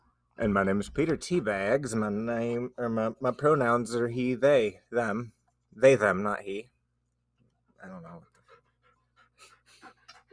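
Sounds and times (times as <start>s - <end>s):
speech: 0.4s - 6.7s, 7.8s - 8.3s
dog panting: 7.6s - 10.3s.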